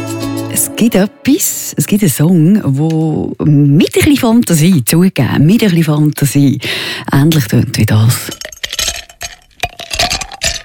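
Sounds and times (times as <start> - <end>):
speech: 0.6 - 8.8
ice cubes clinking and rattling against a glass: 8.2 - 10.6.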